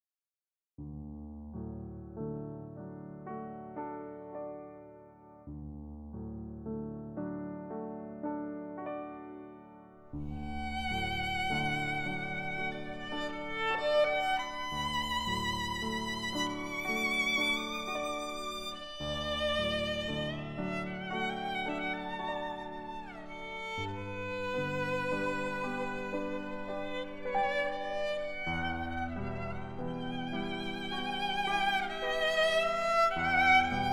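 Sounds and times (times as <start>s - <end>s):
meditation piano: 0.8s - 33.9s
meditation violin: 8.8s - 33.9s.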